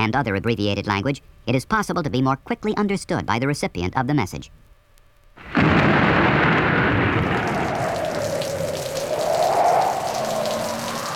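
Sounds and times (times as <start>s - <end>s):
speech: 0.0s - 4.6s
heavy rain pounding on a car windshield while driving on Interstate 80: 5.4s - 11.1s.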